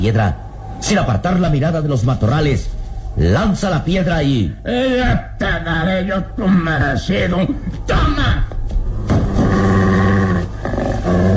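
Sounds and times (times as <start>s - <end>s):
speech: 0.0s - 8.4s
dog growling as a radio drama sound effect: 9.1s - 11.3s.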